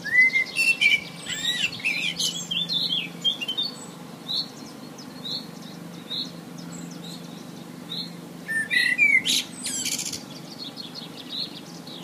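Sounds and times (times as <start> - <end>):
common blackbird fluted warbled song ending in squeaky high twitters: 0.0 - 12.0.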